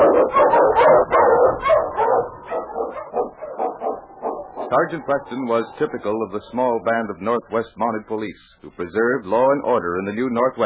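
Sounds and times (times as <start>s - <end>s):
husky sled dogs barking and yipping excitedly: 0.0s - 5.9s
speech: 4.8s - 10.6s.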